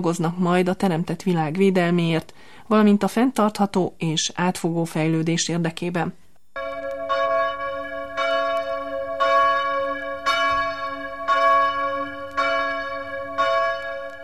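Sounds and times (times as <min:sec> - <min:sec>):
speech: 0:00.0 - 0:06.2
new church bell of the Exaltation of the Holy Cross chapel in Alsóbodok tolling: 0:06.6 - 0:14.2.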